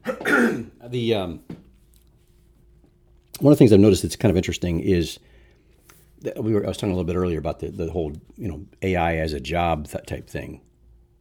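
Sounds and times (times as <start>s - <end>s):
raspy cough: 0.0s - 0.8s
throat clearing: 0.0s - 0.8s
speech: 0.6s - 1.5s, 3.4s - 5.3s, 6.2s - 10.7s.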